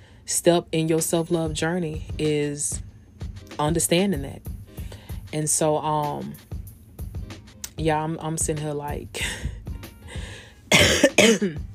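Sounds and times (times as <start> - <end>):
speech: 0.3 - 2.9, 3.6 - 4.5, 5.3 - 6.5, 7.8 - 9.5, 10.7 - 11.7
harsh coughs: 10.7 - 11.7.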